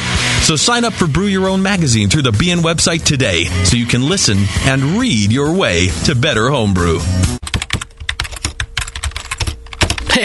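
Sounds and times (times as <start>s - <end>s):
speech: 0.5s - 7.5s
typing on a computer keyboard: 7.4s - 10.2s.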